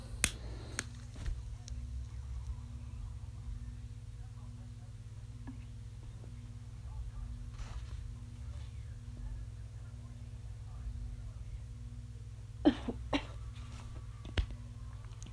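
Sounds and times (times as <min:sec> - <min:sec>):
steady low electrical hum: 0:00.0 - 0:15.3
person coughing after smoking: 0:12.6 - 0:13.5.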